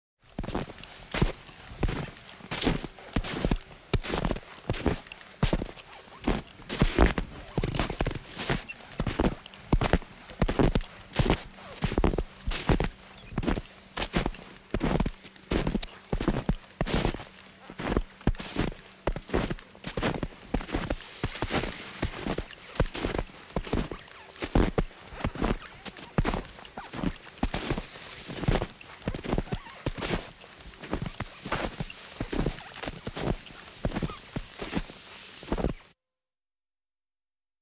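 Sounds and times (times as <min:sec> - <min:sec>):
skier walking through snow: 0:00.2 - 0:35.9.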